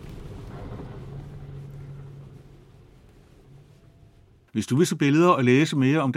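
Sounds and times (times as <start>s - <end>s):
car engine drone: 0.0s - 4.5s
speech: 4.6s - 6.1s.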